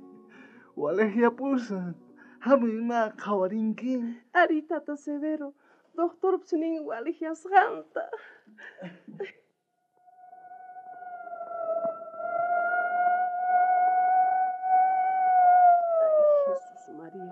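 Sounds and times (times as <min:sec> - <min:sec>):
speech: 0:00.8 - 0:09.4
ambulance siren wailing: 0:10.2 - 0:17.3.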